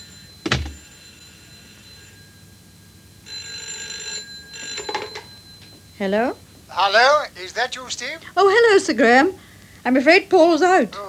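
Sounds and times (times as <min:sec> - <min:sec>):
telephone bell ringing: 0:00.0 - 0:08.0
speech: 0:06.0 - 0:11.0.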